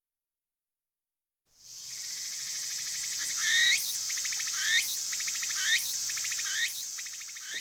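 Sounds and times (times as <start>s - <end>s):
cricket-like insect from cherry and persimmon trees chirping: 1.6s - 7.5s.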